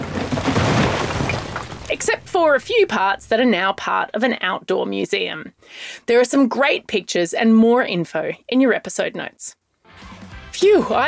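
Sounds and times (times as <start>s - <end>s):
wall between East and West Germany being smashed down: 0.0s - 3.0s
sharp impacts: 0.0s - 3.4s
speech: 2.0s - 9.6s, 10.6s - 11.0s.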